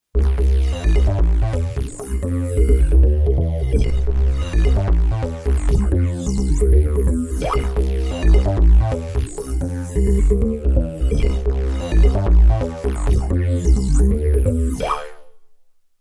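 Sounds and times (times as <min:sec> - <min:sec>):
bass with effects: 0:00.1 - 0:15.2.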